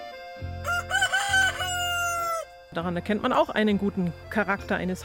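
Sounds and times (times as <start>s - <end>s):
hen cackling after laying an egg: 0.7s - 2.6s
speech: 2.7s - 5.0s.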